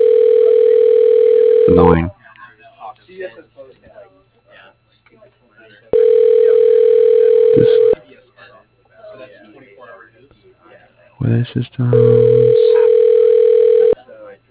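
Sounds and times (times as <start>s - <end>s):
outgoing phone call ringback tone: 0.0s - 2.0s, 6.0s - 8.0s, 11.9s - 14.0s
speech: 1.7s - 2.2s, 11.2s - 13.0s.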